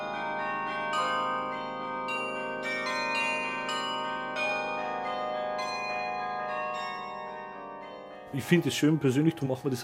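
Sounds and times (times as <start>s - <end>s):
carillon bells in Munich playing a slow melody from a mechanical keyboard: 0.0s - 9.8s
speech: 8.3s - 9.8s.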